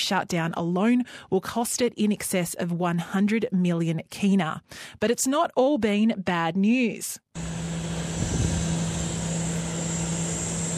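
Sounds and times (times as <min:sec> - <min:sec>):
speech: 0:00.0 - 0:07.5
plane carrying medical supplies touching down: 0:07.4 - 0:10.7.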